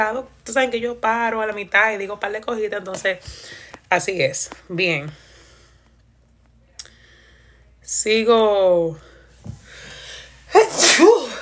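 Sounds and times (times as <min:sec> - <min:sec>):
speech: 0:00.0 - 0:05.3, 0:07.9 - 0:09.1
sneeze with a voiced squeal: 0:10.5 - 0:11.4.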